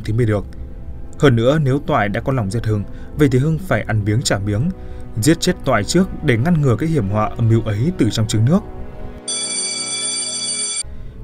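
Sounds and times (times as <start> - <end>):
speech: 0.0 - 0.6, 1.2 - 8.8
mobile phone ringtone: 9.3 - 10.9.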